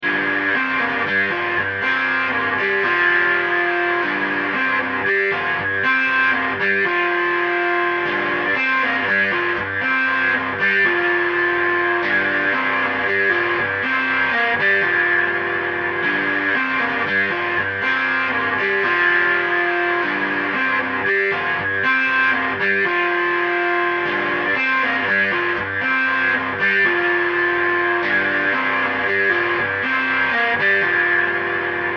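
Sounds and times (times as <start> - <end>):
guitar riff: 0.0 - 31.9.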